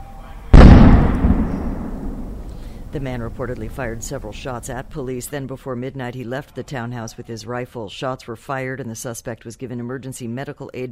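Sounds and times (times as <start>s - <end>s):
police stun grenade or flashbang blast at night during an armed standoff at a townhouse: 0.5s - 4.9s
speech: 2.9s - 10.9s.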